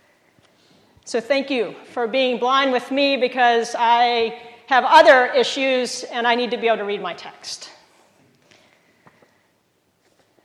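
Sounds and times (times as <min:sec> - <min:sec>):
quiet hiss of room noise: 0:00.0 - 0:10.4
speech: 0:01.1 - 0:07.8
faint soft footsteps: 0:07.9 - 0:10.4.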